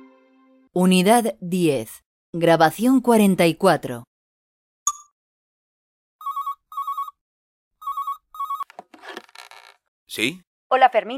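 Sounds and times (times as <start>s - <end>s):
speech: 0.8s - 4.1s, 10.2s - 11.1s
telephone ringing for an incoming call: 6.2s - 7.2s, 7.8s - 8.7s.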